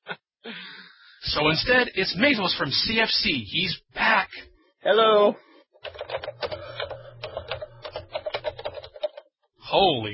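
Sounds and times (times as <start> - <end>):
speech: 1.3 - 3.8, 4.9 - 5.5, 9.8 - 10.1
loud computer keyboard typing: 5.8 - 9.3
low mechanical hum: 6.2 - 8.7.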